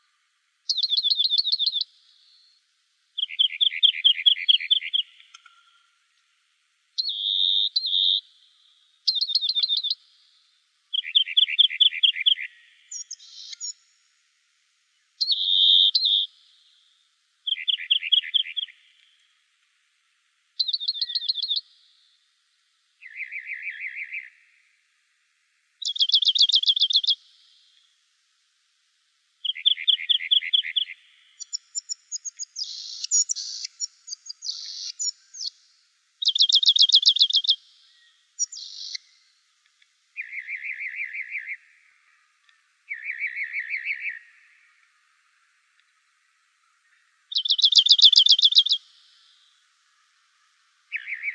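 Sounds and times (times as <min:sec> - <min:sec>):
rock wren calling: 0:00.7 - 0:02.4, 0:03.2 - 0:05.9, 0:07.0 - 0:08.2, 0:09.1 - 0:10.0, 0:10.9 - 0:13.8, 0:15.2 - 0:16.3, 0:17.5 - 0:18.8, 0:20.6 - 0:21.6, 0:23.0 - 0:24.3, 0:25.8 - 0:27.2, 0:29.4 - 0:35.6, 0:36.2 - 0:39.1, 0:40.2 - 0:41.7, 0:42.9 - 0:44.5, 0:47.3 - 0:49.1, 0:50.9 - 0:51.3.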